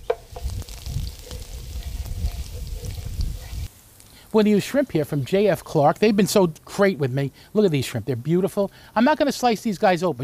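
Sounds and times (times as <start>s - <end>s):
wooden spoon stirring chili peppers in a pan: 0.0s - 4.4s
dried chili peppers toasting and sizzling in a pan: 0.0s - 10.2s
speech: 4.3s - 10.2s.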